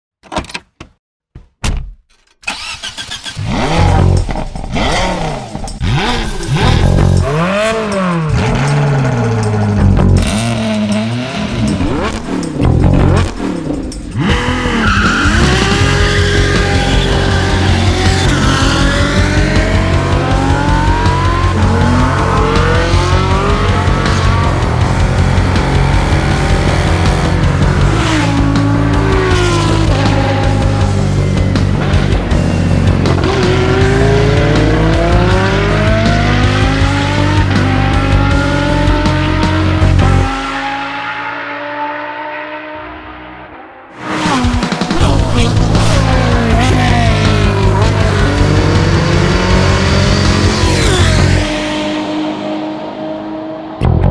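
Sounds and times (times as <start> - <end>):
cars: 2.4 - 54.0.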